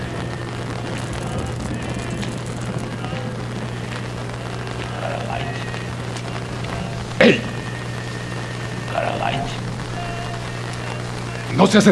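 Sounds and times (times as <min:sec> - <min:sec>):
low steady hum: 0:00.0 - 0:11.8
rain falling indoors on a hard surface: 0:00.0 - 0:11.8
speech: 0:07.3 - 0:07.5, 0:11.6 - 0:11.8.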